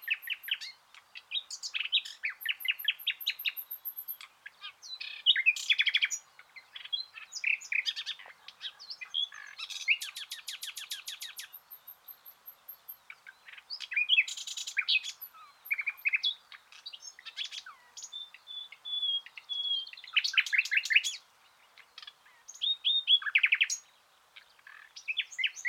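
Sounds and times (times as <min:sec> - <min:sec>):
common nightingale Luscinia megarhynchos singing: 0:00.0 - 0:25.6.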